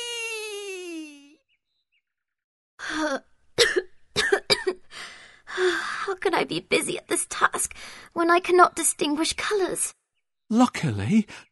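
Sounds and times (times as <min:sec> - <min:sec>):
little girl making a high whiny vocal tone: 0:00.0 - 0:01.4
speech: 0:03.0 - 0:03.3, 0:06.2 - 0:11.5
little girl coughing sharp hoarse coughs: 0:03.6 - 0:04.8.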